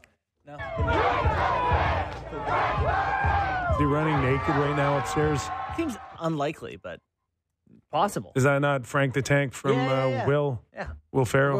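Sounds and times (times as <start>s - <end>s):
speech: 0.5s - 0.8s, 3.8s - 7.1s, 7.9s - 11.5s
audience cheering and whooping on a live show: 0.7s - 6.2s.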